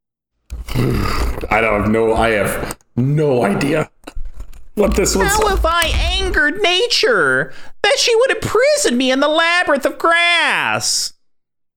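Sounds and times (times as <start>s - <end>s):
person vocally imitating a young elephant: 0.6s - 1.6s
speech: 0.8s - 4.0s, 4.8s - 11.2s.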